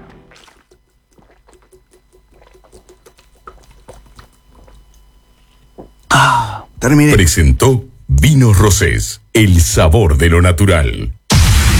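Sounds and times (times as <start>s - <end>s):
person gulping and sipping water during a hydration pause: 0.2s - 6.8s
mouth and throat clicks while drinking: 0.4s - 5.1s
speech: 6.8s - 11.2s.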